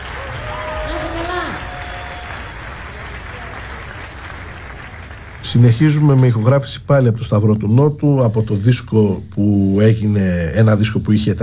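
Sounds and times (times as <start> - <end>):
audience applause: 0.0 - 6.4
speech: 5.5 - 11.4.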